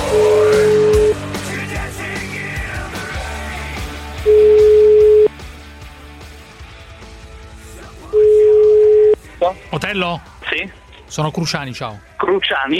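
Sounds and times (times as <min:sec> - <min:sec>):
outgoing telephone call ringing beeps: 0:00.1 - 0:01.1, 0:04.3 - 0:05.3, 0:08.1 - 0:09.1
speech: 0:09.9 - 0:12.7.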